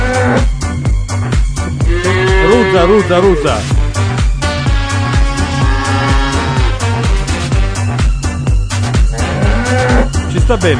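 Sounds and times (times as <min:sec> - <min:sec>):
angry cow mooing loudly: 0:00.0 - 0:00.5, 0:01.8 - 0:03.8, 0:04.9 - 0:07.1, 0:09.1 - 0:10.2
steady rhythmic backing: 0:00.0 - 0:10.7
speech: 0:02.8 - 0:03.8, 0:10.5 - 0:10.7.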